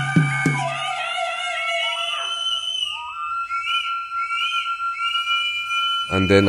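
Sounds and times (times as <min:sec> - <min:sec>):
low thumps: 0:00.0 - 0:00.8
several shrill whistles blowing: 0:00.0 - 0:06.4
speech: 0:06.1 - 0:06.4.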